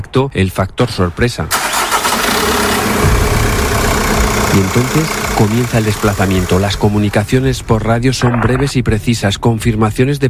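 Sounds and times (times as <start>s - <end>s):
speech: 0.1s - 1.6s, 4.6s - 10.2s
vehicle engines idling: 1.5s - 8.1s.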